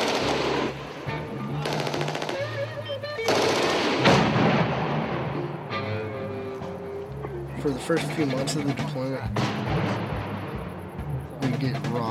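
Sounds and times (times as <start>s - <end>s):
machine-gun fire in combat: 0.0s - 0.8s, 1.6s - 2.6s, 3.2s - 5.4s
continuous rumbling background: 0.0s - 12.0s
speech: 7.7s - 10.1s, 11.6s - 12.0s.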